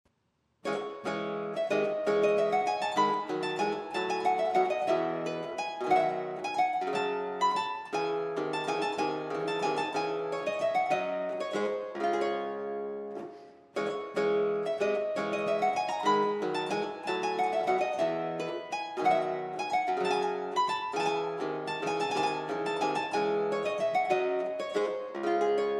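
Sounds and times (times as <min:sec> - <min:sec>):
harpsichord playing a corrente: 0:00.7 - 0:12.9, 0:13.8 - 0:25.7.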